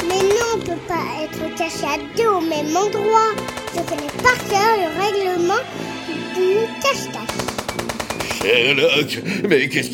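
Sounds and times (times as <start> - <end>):
rotary machine gun firing: 0.0 - 0.7, 3.3 - 4.7, 7.2 - 8.8
speech: 1.7 - 7.5, 8.4 - 9.9.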